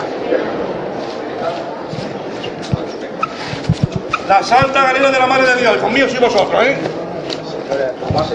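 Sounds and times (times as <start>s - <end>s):
steady murmur of a crowd: 0.0s - 8.3s
soft-soled sneakers squeaking on hard tiled church floor: 1.5s - 5.0s
footfalls: 1.9s - 5.0s
speech: 4.3s - 7.0s, 7.8s - 8.3s.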